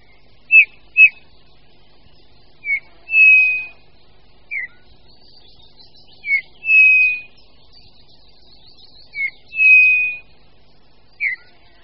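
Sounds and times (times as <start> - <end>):
Eurasian bullfinch giving soft piping whistled calls: 0.0 - 1.3, 2.6 - 3.9, 4.5 - 4.9, 5.8 - 7.4, 8.8 - 10.3, 11.2 - 11.6.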